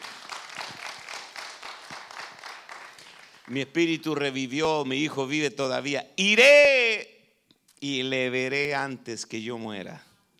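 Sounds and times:
crowd applauding given to God: 0:00.0 - 0:03.6
speech: 0:03.5 - 0:07.1, 0:07.8 - 0:10.1.

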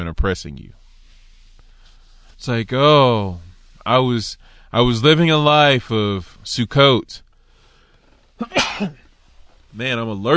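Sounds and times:
speech: 0:00.1 - 0:00.8, 0:02.4 - 0:07.2, 0:08.4 - 0:09.0, 0:09.8 - 0:10.3
sharp sneeze: 0:08.4 - 0:09.1.

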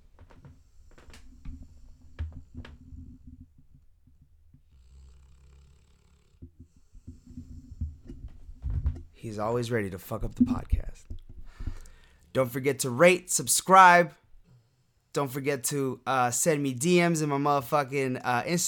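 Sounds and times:
soft hiss: 0:00.0 - 0:18.6
dog snoring: 0:04.7 - 0:07.8
speech: 0:09.2 - 0:11.1, 0:12.4 - 0:14.2, 0:15.1 - 0:18.6.

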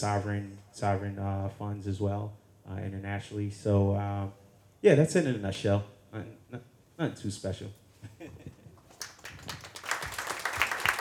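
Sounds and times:
speech: 0:00.0 - 0:08.5
audience applause: 0:08.9 - 0:10.9.

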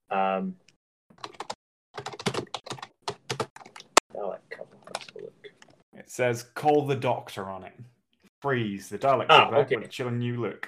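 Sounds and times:
speech: 0:00.4 - 0:00.7, 0:06.1 - 0:07.8, 0:08.4 - 0:10.6
computer keyboard typing: 0:01.2 - 0:04.0.

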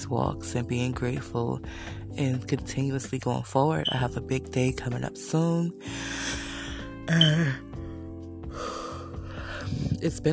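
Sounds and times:
speech: 0:00.0 - 0:06.4, 0:07.1 - 0:07.7, 0:10.0 - 0:10.3
drawn-out yawn with a voiced moan: 0:07.1 - 0:07.6.

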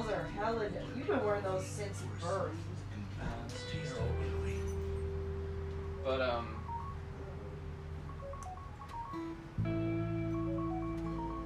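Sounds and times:
steady noise: 0:00.0 - 0:11.4
speech: 0:00.1 - 0:04.3, 0:06.0 - 0:06.6
mobile phone ringing with a melodic ringtone of short electronic beeps: 0:06.4 - 0:07.4, 0:08.0 - 0:09.6, 0:10.4 - 0:11.4.

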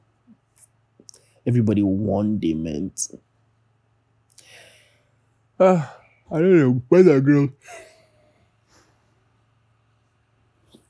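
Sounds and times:
low hum: 0:00.0 - 0:10.8
speech: 0:01.4 - 0:03.3, 0:05.6 - 0:07.8
faint breaths: 0:04.3 - 0:06.3, 0:07.6 - 0:09.4
breathy yawn with soft falling voiced tone: 0:05.6 - 0:06.1.

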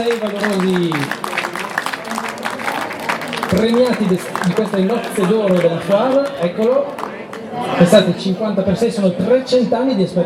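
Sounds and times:
speech: 0:00.0 - 0:01.3, 0:03.5 - 0:10.2
audience applause at an award ceremony: 0:00.0 - 0:07.2.

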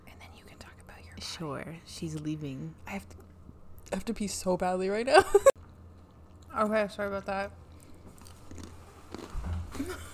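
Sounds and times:
speech: 0:01.2 - 0:03.2, 0:03.9 - 0:05.5, 0:06.6 - 0:07.6
person chewing and crunching dry pretzels: 0:05.6 - 0:06.7, 0:07.7 - 0:09.9.

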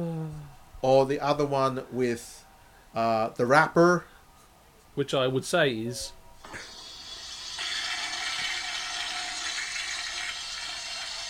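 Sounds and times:
speech: 0:00.8 - 0:04.1, 0:05.0 - 0:06.7
toilet flushing: 0:06.4 - 0:11.2.

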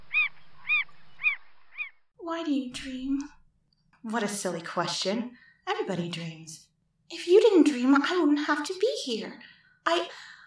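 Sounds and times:
lone bird giving plaintive wavering nasal calls: 0:00.0 - 0:02.1
speech: 0:02.3 - 0:03.4, 0:04.0 - 0:10.4.

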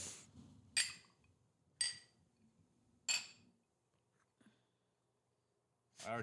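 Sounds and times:
drinking glasses holding 120-proof liquor clinking in a toast: 0:00.8 - 0:01.1, 0:01.8 - 0:02.2, 0:03.1 - 0:03.4.

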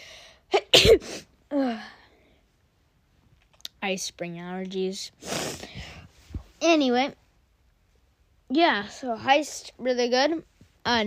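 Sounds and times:
person sneezing: 0:00.5 - 0:01.3, 0:05.2 - 0:05.8
speech: 0:03.9 - 0:05.6, 0:06.6 - 0:07.2, 0:08.5 - 0:11.0.

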